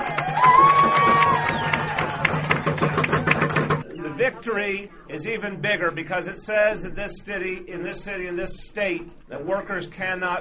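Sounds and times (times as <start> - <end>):
scattered shouts: 0.0 - 2.7
crowd applauding: 0.0 - 3.9
speech: 4.3 - 10.3.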